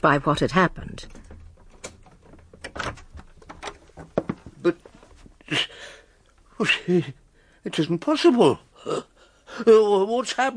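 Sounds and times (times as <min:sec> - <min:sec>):
speech: 0:00.0 - 0:01.2, 0:04.6 - 0:04.9, 0:06.6 - 0:10.5
key working the lock of a street door: 0:01.1 - 0:04.1.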